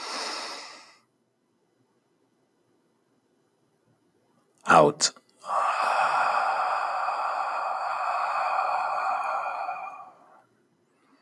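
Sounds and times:
slow deep breath in during a guided breathing exercise: 0.0 - 1.1, 5.4 - 11.2
speech: 4.7 - 5.6.

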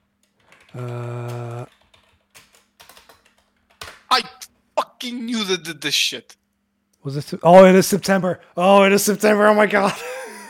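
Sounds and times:
typing on a computer keyboard: 0.0 - 4.1
speech: 0.7 - 1.5, 5.0 - 6.4, 7.0 - 10.4.

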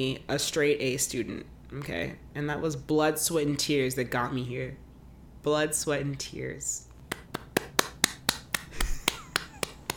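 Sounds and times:
speech: 0.0 - 4.8, 5.4 - 6.9
sharp hand claps: 7.1 - 9.9.

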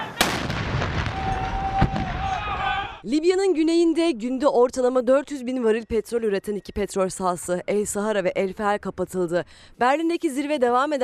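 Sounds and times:
loud blasts of explosion or artillery fire in a city: 0.0 - 2.7
dense rumbling city background: 0.0 - 11.0
speech: 3.0 - 11.0.

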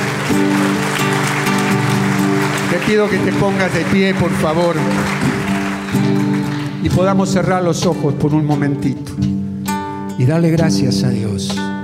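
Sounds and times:
crowd applauding: 0.0 - 7.7
speech: 0.4 - 0.6, 2.8 - 6.0, 6.8 - 9.4, 10.2 - 11.6.

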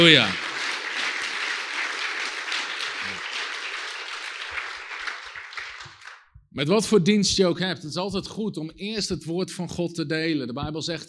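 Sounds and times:
speech: 0.0 - 0.4, 6.6 - 11.0
crowd applauding: 0.0 - 6.3.

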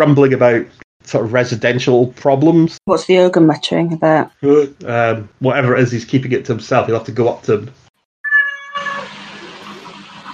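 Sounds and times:
speech: 0.0 - 7.8
cat meowing in a video game: 8.3 - 9.1.

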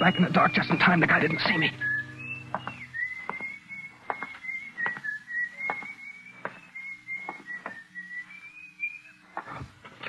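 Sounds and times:
speech: 0.0 - 1.9
person whistling a tune: 1.4 - 9.6
thuds like footsteps: 2.5 - 7.8.

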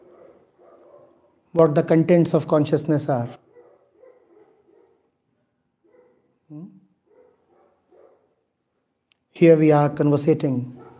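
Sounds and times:
dog barking in the distance: 0.0 - 1.4, 3.4 - 5.2, 5.8 - 8.5, 10.8 - 10.9
speech: 1.5 - 3.4, 9.4 - 10.8.

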